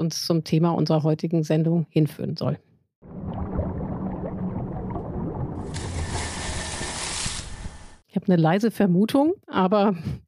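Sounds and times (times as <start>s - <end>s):
speech: 0.0s - 2.7s, 8.2s - 10.2s
underwater gurgling and rumbling: 3.0s - 7.9s
bright hissing wash: 5.7s - 8.0s.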